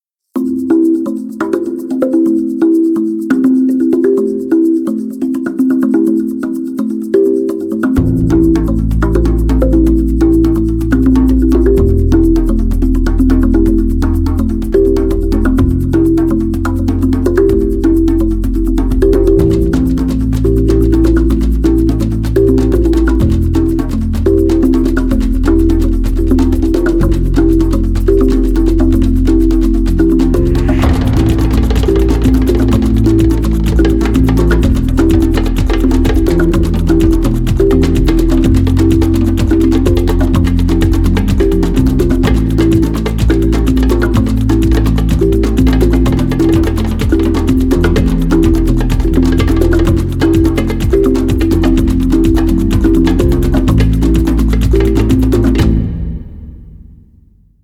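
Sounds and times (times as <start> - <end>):
mysterious drums: 1.4 - 57.6.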